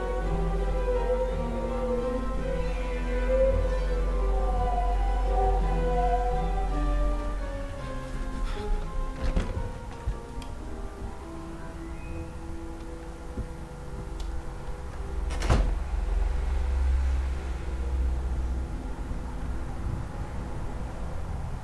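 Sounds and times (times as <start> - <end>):
low rumbling hum: 0.0 - 21.6
door opening clack: 15.2 - 15.8.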